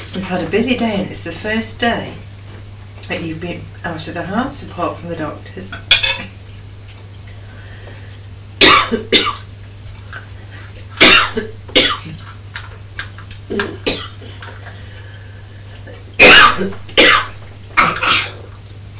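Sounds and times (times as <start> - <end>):
speech: 0.3 - 2.3, 3.1 - 6.0
sharp coughs: 8.6 - 9.5, 11.0 - 12.2, 13.5 - 14.3, 16.2 - 18.5.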